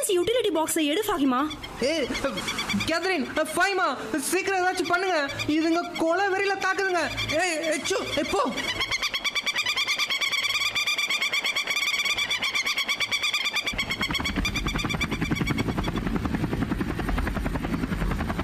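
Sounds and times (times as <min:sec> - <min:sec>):
Chinese army helicopter rotor chopping: 0:00.0 - 0:18.4
speech: 0:00.1 - 0:08.9.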